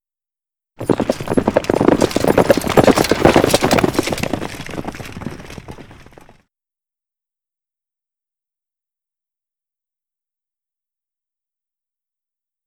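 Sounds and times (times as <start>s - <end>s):
galloping: 0.8s - 6.4s.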